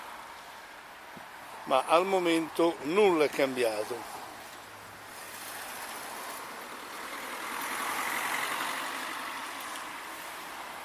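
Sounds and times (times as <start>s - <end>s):
steady roar of traffic on a seafront road: 0.0s - 10.8s
speech: 1.7s - 4.2s
vehicle speeding past on a seafront road: 5.2s - 10.0s.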